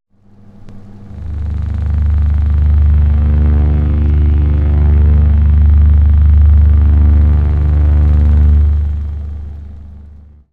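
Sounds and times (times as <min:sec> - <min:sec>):
boiler drone: 0:00.3 - 0:10.5.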